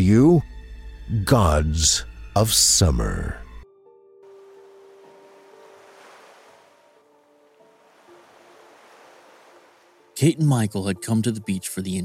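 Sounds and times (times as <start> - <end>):
speech: 0.0 - 0.5, 1.1 - 3.4, 10.2 - 12.0
ocean waves breaking on a sandy beach: 4.3 - 10.2.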